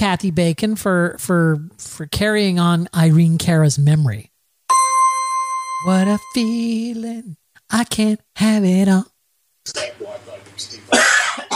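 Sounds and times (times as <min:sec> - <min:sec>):
speech: 0:00.0 - 0:04.3, 0:05.8 - 0:11.1
person coughing: 0:10.9 - 0:11.5.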